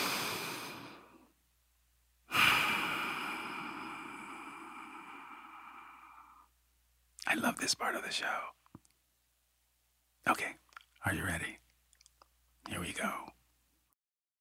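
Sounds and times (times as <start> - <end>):
deep breath: 0.0 - 1.3, 2.3 - 6.5
speech: 7.3 - 8.6, 10.2 - 11.6, 12.7 - 13.3.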